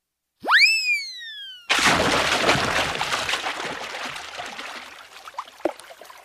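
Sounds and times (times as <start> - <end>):
quick rising cartoon whistle: 0.4 - 1.7
loud splash of a dog jumping into water: 1.7 - 6.2.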